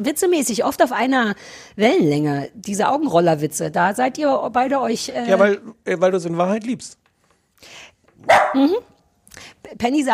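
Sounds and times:
speech: 0:00.0 - 0:07.0, 0:07.6 - 0:10.1
dog barking: 0:08.2 - 0:08.8.

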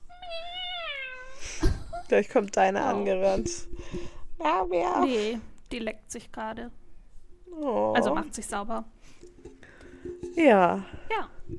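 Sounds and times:
person imitating a cat's meow: 0:00.0 - 0:01.4
speech: 0:02.1 - 0:06.8, 0:07.5 - 0:09.0, 0:10.1 - 0:11.5.

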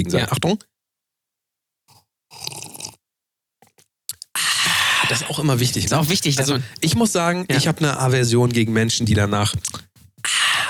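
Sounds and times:
speech: 0:00.0 - 0:00.7, 0:05.1 - 0:10.4
slurping sip of mulled wine from a glass: 0:01.9 - 0:03.0, 0:03.7 - 0:05.4, 0:09.6 - 0:10.6
wet swallowing and mouth clicks: 0:01.9 - 0:03.0, 0:03.6 - 0:05.4, 0:09.6 - 0:10.6.

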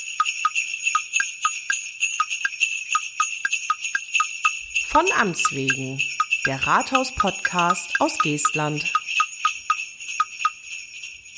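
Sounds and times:
Christmas bell strikes in podcast intro jingle: 0:00.0 - 0:10.5
speech: 0:05.0 - 0:09.0.

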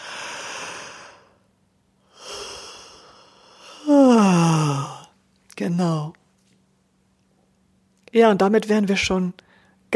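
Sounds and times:
big exaggerated yawn: 0:00.0 - 0:01.4, 0:02.1 - 0:05.2
speech: 0:05.6 - 0:06.2, 0:08.2 - 0:09.9.

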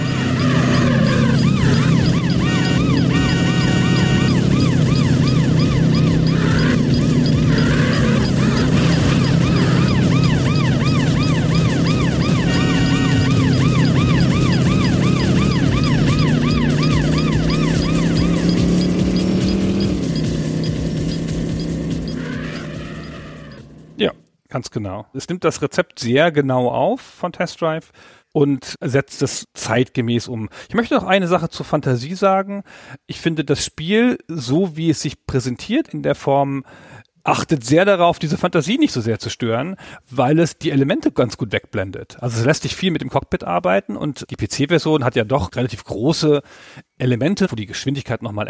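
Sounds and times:
luxury sports car engine racing through traffic in a racing video game: 0:00.0 - 0:24.0
police siren wailing and yelping in a racing video game: 0:00.0 - 0:24.0
speech: 0:24.9 - 0:48.4.

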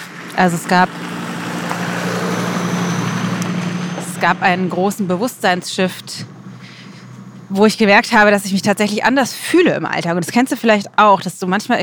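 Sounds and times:
car driving past with road and engine noise: 0:00.0 - 0:07.8
low droning hum: 0:00.0 - 0:09.2
speech: 0:00.4 - 0:01.1, 0:04.2 - 0:06.4, 0:07.5 - 0:11.8.

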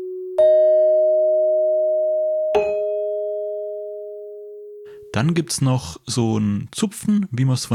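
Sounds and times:
bell-like chime tones: 0:00.4 - 0:05.0
speech: 0:05.2 - 0:07.7.

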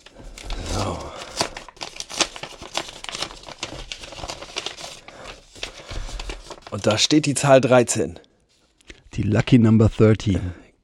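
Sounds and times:
paper envelope being opened during a magic trick: 0:00.0 - 0:07.2
speech: 0:06.7 - 0:08.3, 0:09.2 - 0:10.6.

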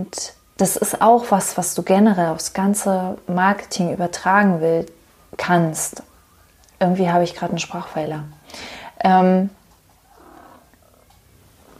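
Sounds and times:
speech: 0:00.0 - 0:06.1, 0:06.8 - 0:09.6
cat purring: 0:09.5 - 0:11.7.

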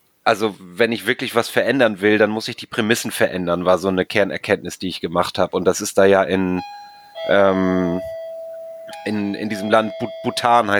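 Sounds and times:
speech: 0:00.2 - 0:08.2, 0:09.0 - 0:10.7
doorbell bright two-tone electronic chime: 0:06.6 - 0:10.7.

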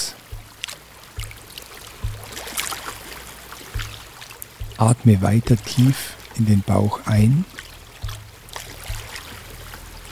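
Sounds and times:
water lapping against a wooden jetty on Lake Constance: 0:00.0 - 0:10.1
speech: 0:04.8 - 0:07.5.

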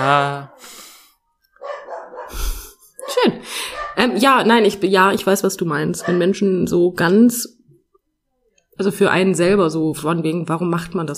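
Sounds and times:
speech: 0:00.0 - 0:00.8, 0:03.2 - 0:07.6, 0:08.8 - 0:11.1
dog barking: 0:01.6 - 0:02.4, 0:03.0 - 0:04.2, 0:05.9 - 0:06.4.

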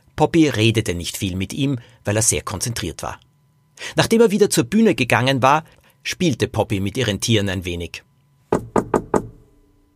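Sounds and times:
speech: 0:00.2 - 0:08.1
sharp knocks on a dressing room door: 0:08.5 - 0:09.4.

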